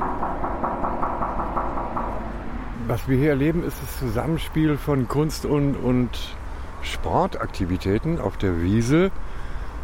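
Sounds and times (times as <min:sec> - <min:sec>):
hollow raps knocking on a sculpture: 0:00.0 - 0:02.6
continuous low rumble: 0:00.0 - 0:03.2
speech: 0:02.9 - 0:09.3.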